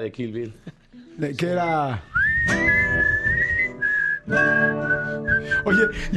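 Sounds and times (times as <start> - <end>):
speech: 0.0 - 2.8, 4.3 - 6.1
person whistling a film theme tune: 2.1 - 6.1.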